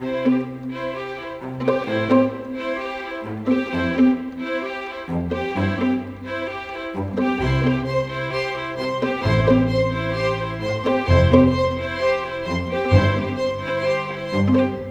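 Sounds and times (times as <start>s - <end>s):
cinematic orchestral strings: 0.0s - 14.8s.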